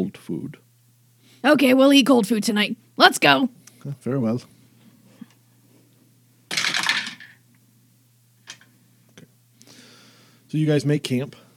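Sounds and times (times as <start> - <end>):
speech: 0.0 - 0.6, 1.4 - 4.6, 10.5 - 11.4
faint steady hum: 0.0 - 11.5
small d20 die clattering across a hard tabletop: 6.5 - 7.4.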